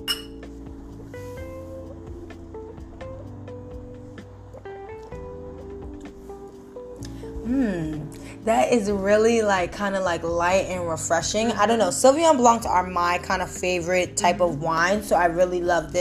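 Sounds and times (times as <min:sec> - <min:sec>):
wine glasses clinking in a toast: 0:00.0 - 0:00.4
steady tonal hum: 0:00.0 - 0:15.9
speech: 0:07.5 - 0:15.9.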